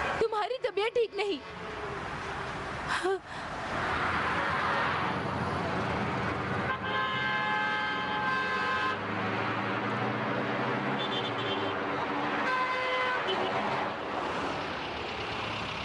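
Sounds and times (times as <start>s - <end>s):
busy road traffic rumble: 0.0s - 15.8s
speech: 0.7s - 2.0s, 2.9s - 4.0s
car horns honking: 6.6s - 9.1s, 10.9s - 11.8s, 12.4s - 13.7s.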